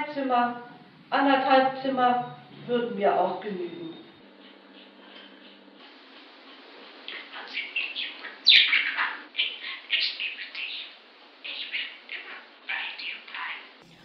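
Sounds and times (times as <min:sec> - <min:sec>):
speech: 0:00.2 - 0:03.9
pet bird chirping and twittering: 0:07.4 - 0:14.0.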